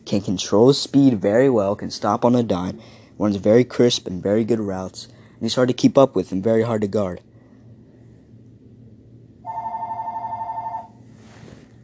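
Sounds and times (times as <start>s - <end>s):
faint low hum: 0.0s - 11.8s
speech: 0.1s - 7.3s
telephone ringing with an electronic warble: 9.5s - 11.0s.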